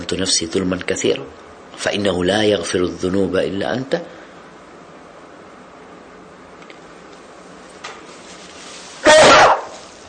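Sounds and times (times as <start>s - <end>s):
speech: 0.1s - 4.2s
person sneezing: 9.0s - 9.7s.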